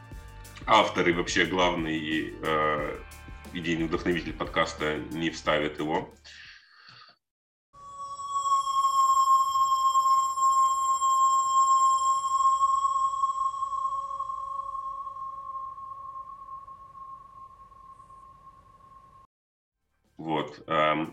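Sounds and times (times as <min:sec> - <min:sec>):
speech: 0:00.7 - 0:06.4
steady electronic tone with bright overtones from sonified chemical composition: 0:07.8 - 0:19.3.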